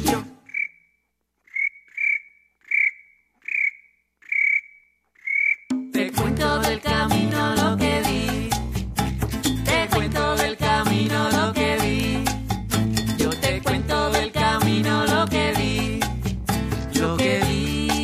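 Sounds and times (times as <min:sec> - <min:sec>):
music: 0:00.0 - 0:00.4, 0:05.8 - 0:18.0
cricket chirping: 0:00.4 - 0:05.9.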